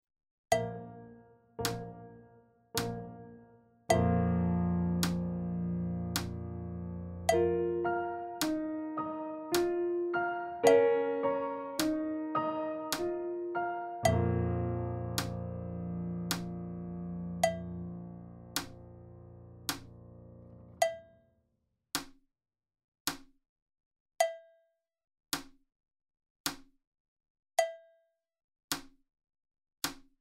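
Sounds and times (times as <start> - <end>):
piano: 0.5 - 20.9.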